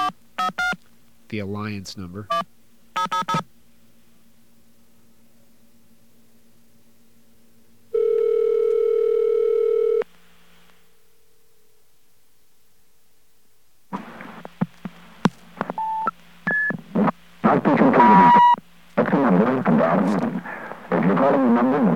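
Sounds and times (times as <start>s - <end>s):
faint hum: 0.0s - 21.9s
staticky telephone line: 0.0s - 21.9s
speech: 1.3s - 3.5s
loud steady dial tone: 8.0s - 10.0s.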